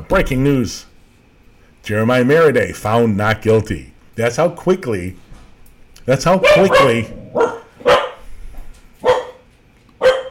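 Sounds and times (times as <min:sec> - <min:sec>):
speech: 0:00.1 - 0:00.9, 0:01.8 - 0:05.2, 0:06.1 - 0:07.6
dog barking in sharp loud bursts: 0:06.4 - 0:08.2, 0:09.0 - 0:10.2.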